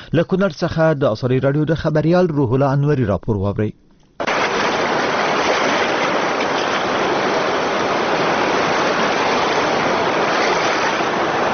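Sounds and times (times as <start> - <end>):
speech: 0.1 - 3.8
rushing floodwater of the swollen Kunar River: 4.2 - 11.5.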